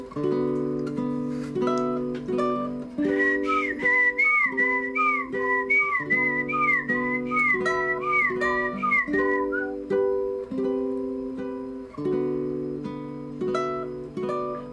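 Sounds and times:
steady instrumental chords: 0:00.0 - 0:14.6
speech: 0:00.2 - 0:00.5
bright wavering whistled melody: 0:03.0 - 0:10.2.

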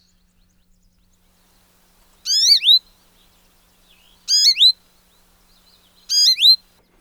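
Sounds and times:
American goldfinch twittering chirps: 0:01.6 - 0:06.7.

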